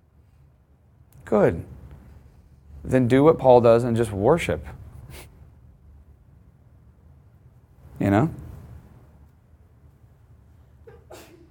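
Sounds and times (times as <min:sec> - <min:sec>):
low rumbling room hum: 0:00.0 - 0:11.4
speech: 0:01.2 - 0:01.8, 0:02.8 - 0:05.3, 0:08.0 - 0:08.4
person sneezing: 0:10.9 - 0:11.4.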